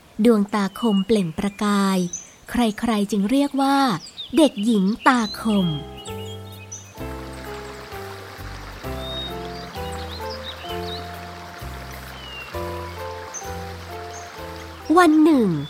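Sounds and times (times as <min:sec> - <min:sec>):
speech: 0:00.2 - 0:05.9, 0:15.0 - 0:15.6
bird chirps: 0:00.3 - 0:15.6
gentle melodic music with sustained tones and slow bass line: 0:05.1 - 0:15.6
flowing river water: 0:05.2 - 0:15.6.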